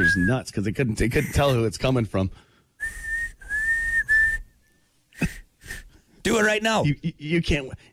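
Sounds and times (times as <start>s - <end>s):
high-pitched whistling with the tongue and lips slightly open: 0.0s - 0.4s, 2.8s - 4.8s
speech: 0.1s - 3.0s, 6.3s - 7.9s.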